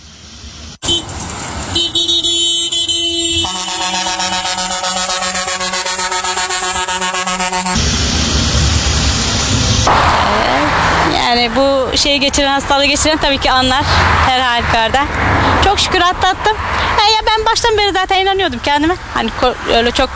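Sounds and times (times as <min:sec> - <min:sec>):
traffic rumble in city centre and ring road: 0:00.0 - 0:20.1
car horns honking in city traffic: 0:00.8 - 0:07.9
speech: 0:11.4 - 0:20.1.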